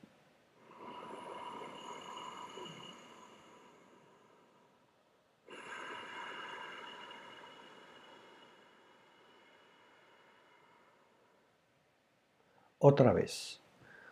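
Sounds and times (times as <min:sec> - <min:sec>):
raspy yogic ocean breathing through a constricted throat: 0:00.6 - 0:11.6
speech: 0:12.8 - 0:13.6.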